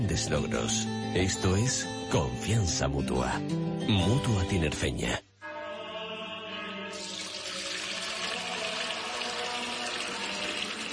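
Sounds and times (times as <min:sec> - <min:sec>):
speech: 0:00.2 - 0:05.3
water pouring from a tap: 0:07.0 - 0:10.9.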